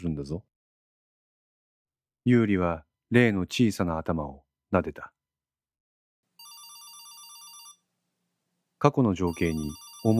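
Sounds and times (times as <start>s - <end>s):
speech: 0.0s - 0.6s, 2.2s - 5.2s, 8.8s - 10.1s
mobile phone ringing: 6.4s - 7.9s, 9.3s - 10.1s.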